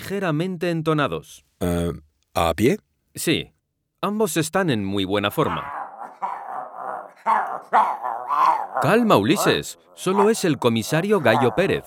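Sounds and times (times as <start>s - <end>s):
speech: 0.1s - 5.8s, 7.2s - 8.0s, 8.8s - 11.8s
dog barking and growling: 5.3s - 11.8s.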